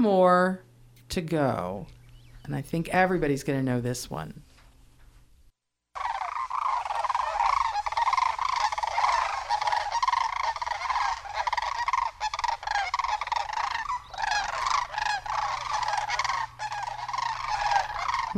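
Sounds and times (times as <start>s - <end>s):
speech: 0.0s - 4.5s
sandhill cranes giving loud rolling trumpeting flight calls: 6.0s - 18.3s.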